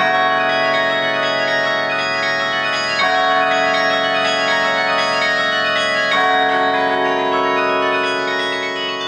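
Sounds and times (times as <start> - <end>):
carillon bells ringing: 0.0 - 9.0.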